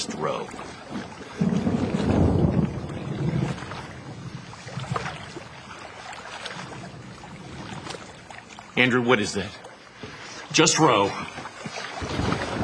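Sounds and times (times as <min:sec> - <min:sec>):
gusty storm wind buffeting the microphone around a small rowing boat: 0:00.0 - 0:08.3, 0:12.0 - 0:12.6
water splashing around a small rowing boat: 0:00.0 - 0:12.6
speech: 0:08.8 - 0:09.6, 0:10.6 - 0:11.4.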